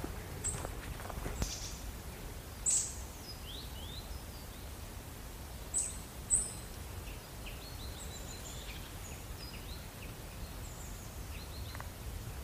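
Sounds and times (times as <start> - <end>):
soft footsteps: 0.0 - 1.5
faint rustling: 0.0 - 2.3
chaffinches singing in woodland: 1.3 - 4.8, 5.5 - 12.0.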